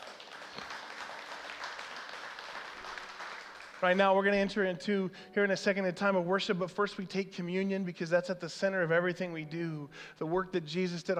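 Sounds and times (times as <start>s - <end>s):
room full of people applauding: 0.0s - 4.1s
speech: 3.8s - 11.1s.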